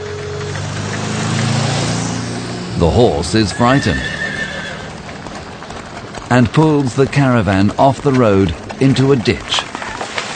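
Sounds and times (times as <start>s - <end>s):
motor car driving past on a road: 0.0s - 6.4s
speech: 2.8s - 4.2s, 6.3s - 9.7s.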